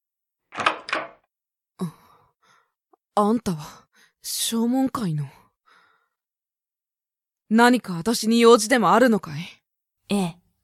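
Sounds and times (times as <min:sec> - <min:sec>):
door opening: 0:00.5 - 0:01.3
speech: 0:03.2 - 0:05.4, 0:07.5 - 0:10.4.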